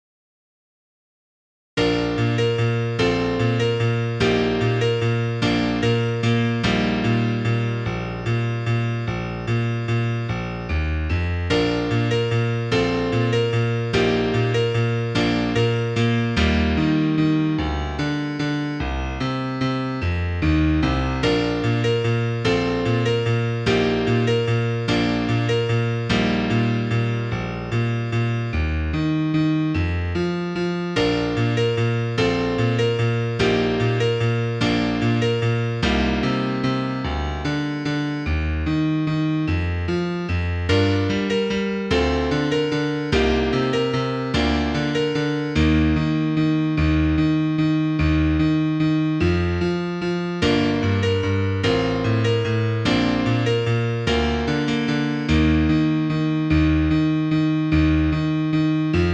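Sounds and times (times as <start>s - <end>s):
piano piece: 1.8s - 59.1s.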